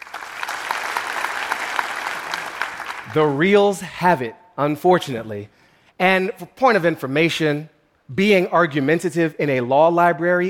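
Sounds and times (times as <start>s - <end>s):
crowd applauding: 0.0s - 3.4s
speech: 3.1s - 10.4s.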